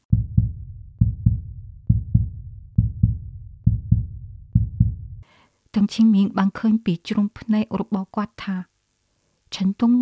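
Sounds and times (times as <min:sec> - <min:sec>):
heartbeat of an astronaut candidate: 0:00.0 - 0:05.2
speech: 0:05.8 - 0:08.7, 0:09.6 - 0:10.0.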